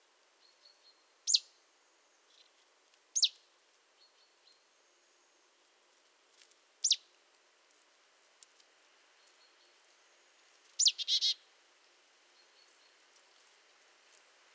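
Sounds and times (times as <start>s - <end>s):
marsh tit Poecile palustris calling: 10.8s - 11.3s.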